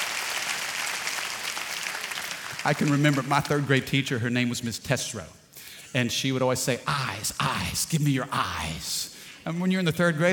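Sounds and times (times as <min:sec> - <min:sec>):
audience clapping: 0:00.0 - 0:04.0
speech: 0:02.6 - 0:10.3.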